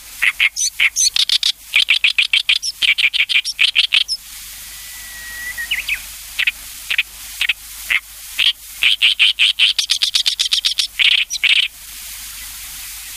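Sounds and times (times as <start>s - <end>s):
Oriental reed warbler singing croaking rattling runs: 0.2s - 4.2s, 4.7s - 7.0s, 8.9s - 11.7s
thin whistled note: 4.4s - 6.1s.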